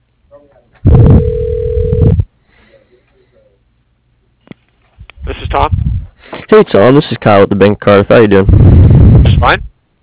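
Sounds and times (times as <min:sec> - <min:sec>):
telephone line tone during a call transfer: 0:00.9 - 0:02.3
speech: 0:05.6 - 0:05.8, 0:06.5 - 0:09.7.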